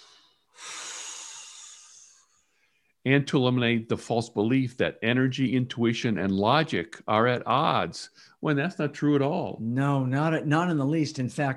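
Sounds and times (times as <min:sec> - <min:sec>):
deep breath: 0:00.0 - 0:03.0, 0:08.1 - 0:08.4
speech: 0:03.0 - 0:11.5.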